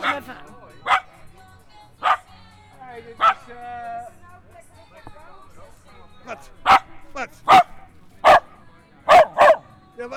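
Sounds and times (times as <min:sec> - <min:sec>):
battery-powered toy dog barking: 0:00.0 - 0:01.2, 0:02.0 - 0:02.3, 0:03.2 - 0:03.5, 0:06.5 - 0:09.7
people talking softly: 0:00.0 - 0:10.1
speech: 0:00.2 - 0:00.6.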